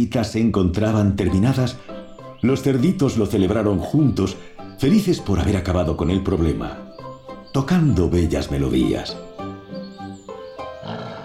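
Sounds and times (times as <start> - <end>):
speech: 0.0 - 6.8, 7.5 - 9.2
wolf growling hungrily: 10.6 - 11.2.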